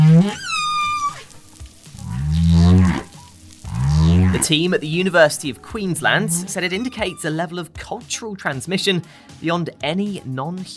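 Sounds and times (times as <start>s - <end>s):
New Caledonian humpback whale song: 0.0s - 7.5s
speech: 4.4s - 10.7s.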